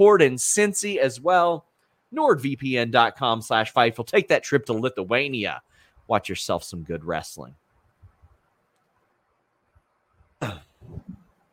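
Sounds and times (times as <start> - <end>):
speech: 0.0 - 7.6
person coughing: 10.4 - 11.2.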